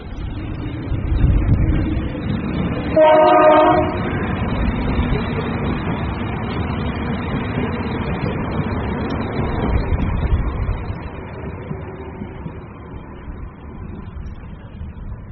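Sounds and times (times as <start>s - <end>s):
train bound for Galway rumbling across a railway bridge: 0.0s - 15.3s
train horn blast: 2.9s - 4.2s.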